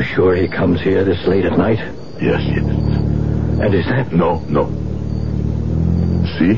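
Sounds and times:
speech: 0.2 - 3.0, 3.6 - 4.8, 6.4 - 6.5
car engine idling as the vehicle crawls past road construction at night: 1.6 - 6.5.

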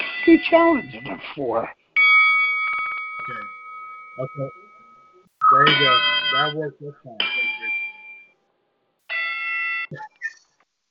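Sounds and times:
bright bell ringing: 0.0 - 1.3, 2.0 - 8.4, 9.1 - 9.9
speech: 0.2 - 1.8, 3.3 - 3.5, 4.2 - 4.6, 5.5 - 7.5, 9.9 - 10.1.

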